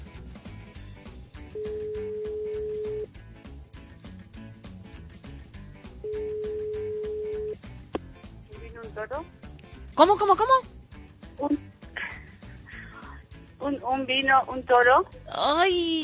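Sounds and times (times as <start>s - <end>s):
music: 0.0s - 16.0s
telephone ringback tones of an outgoing phone call to a contest participant: 1.6s - 3.1s, 6.0s - 7.6s
speech: 10.0s - 10.7s, 13.9s - 16.0s.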